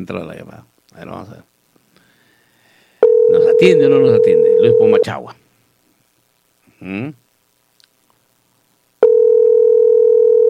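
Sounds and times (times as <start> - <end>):
speech: 0.0 - 1.5, 3.5 - 5.4, 6.8 - 7.2
telephone busy tone on a call: 3.0 - 5.0, 9.0 - 10.4.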